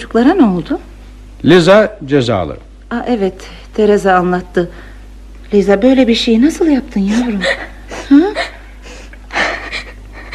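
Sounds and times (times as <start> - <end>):
speech: 0.0 - 4.9, 5.5 - 8.5
young girl crying in gasping breathy sobs: 7.1 - 10.3.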